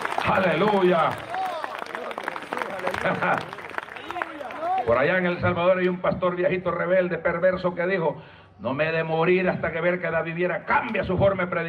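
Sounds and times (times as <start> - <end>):
audience applauding loudly: 0.0 - 5.2
voices shouting and cheering: 0.0 - 5.8
speech: 0.3 - 1.4, 2.9 - 3.6, 4.8 - 11.6.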